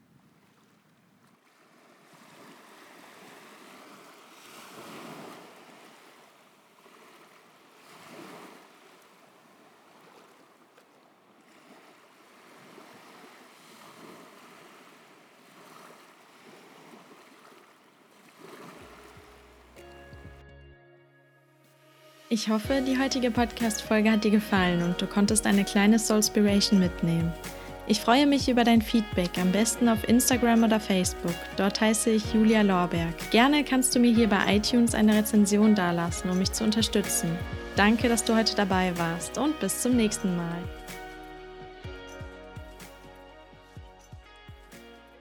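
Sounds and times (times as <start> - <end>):
ocean surf waves: 0.0 - 19.9, 21.8 - 42.2
speech: 22.3 - 40.8
brief electronic tone pattern: 26.4 - 41.0.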